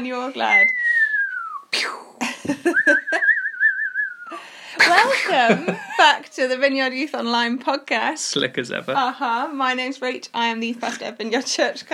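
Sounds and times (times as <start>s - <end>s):
speech: 0.0s - 0.8s, 1.7s - 3.3s, 4.3s - 11.9s
person whistling an imitation of fireworks: 0.5s - 1.7s, 2.7s - 4.4s.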